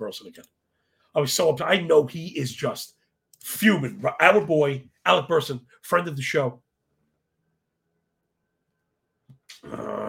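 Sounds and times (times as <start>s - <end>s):
speech: 0.0s - 6.6s, 9.6s - 10.0s
person growling: 9.5s - 10.0s.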